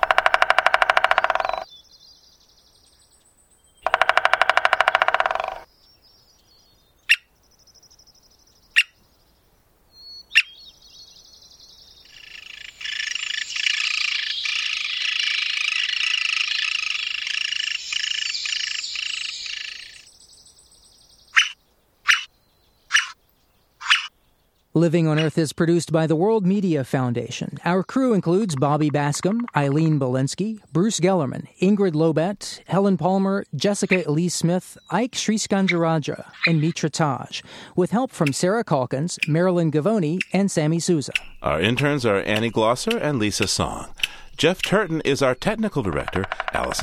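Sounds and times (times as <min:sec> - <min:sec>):
American three-toed woodpecker drumming: 0:00.0 - 0:01.7, 0:03.8 - 0:05.7, 0:12.1 - 0:20.1, 0:21.4 - 0:22.3, 0:27.8 - 0:30.0, 0:32.3 - 0:34.2, 0:35.5 - 0:46.8
American three-toed woodpecker high squeaky calling: 0:00.0 - 0:01.8, 0:03.8 - 0:05.7, 0:07.1 - 0:07.3, 0:08.8 - 0:09.0, 0:10.2 - 0:10.6, 0:12.1 - 0:20.1, 0:21.3 - 0:22.3, 0:22.9 - 0:23.2, 0:23.8 - 0:24.1, 0:25.1 - 0:25.4, 0:33.7 - 0:34.2, 0:34.8 - 0:36.9, 0:38.1 - 0:46.8
speech: 0:24.8 - 0:46.8.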